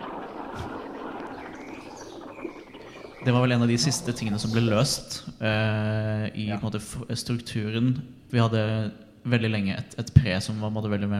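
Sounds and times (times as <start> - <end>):
birds chirping and tweeting in a music track: 0.0 - 5.4
dense airy wash: 0.0 - 5.4
speech: 3.2 - 11.1.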